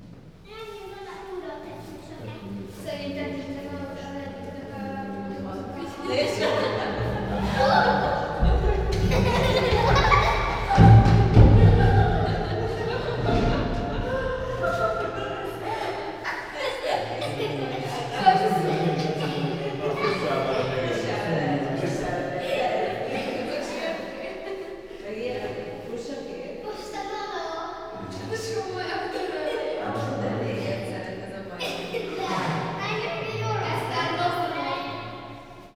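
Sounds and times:
visitors laughing in a monkey house: 5.7s - 25.8s, 28.0s - 34.2s.

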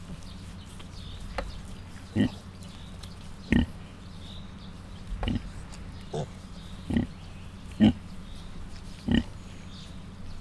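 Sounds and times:
suckling Mangalica piglets grunting in a zoo: 2.1s - 2.6s, 3.5s - 3.8s, 5.1s - 8.1s, 9.0s - 9.6s.

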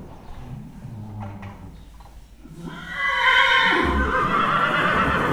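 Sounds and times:
horse snorting in Hortobágy National Park: 0.2s - 5.3s
horse neighing in Hortobágy National Park: 2.4s - 5.3s.

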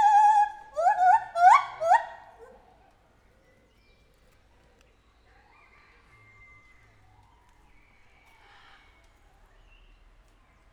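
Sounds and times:
captive white-handed gibbon hooting call in a zoo: 0.0s - 2.5s.

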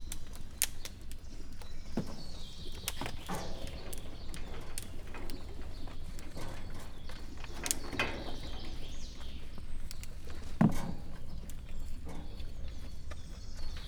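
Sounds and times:
captive Père David's deer joints clicking in a Hungarian zoo: 0.0s - 13.8s.

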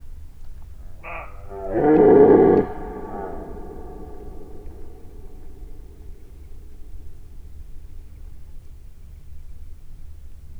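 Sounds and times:
red deer calling in nature: 0.8s - 7.5s.

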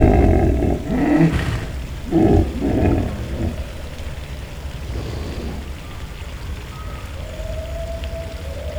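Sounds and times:
Nile hippopotamus snoring in a zoo: 0.0s - 6.2s.

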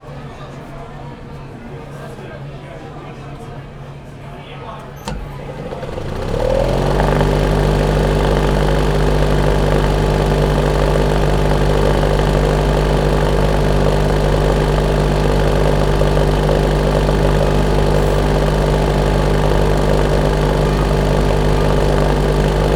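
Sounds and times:
cinema film projector starting and stopping without film: 5.0s - 22.7s.

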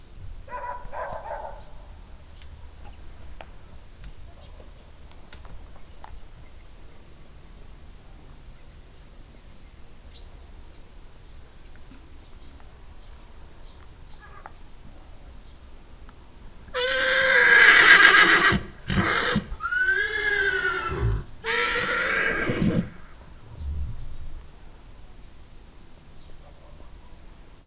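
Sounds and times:
horse neighing on a farmyard: 16.7s - 23.2s.

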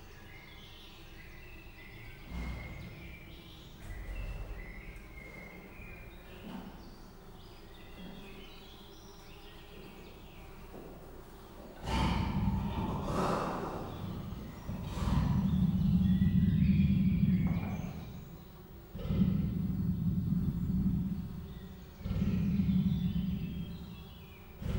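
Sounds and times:
captive female Persian leopard giving deep rough breathy rasps: 2.1s - 7.0s, 11.4s - 24.7s.

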